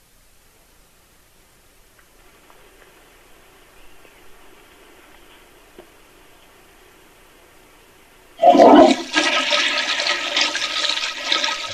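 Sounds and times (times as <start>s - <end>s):
toilet flushing: 8.4s - 11.7s.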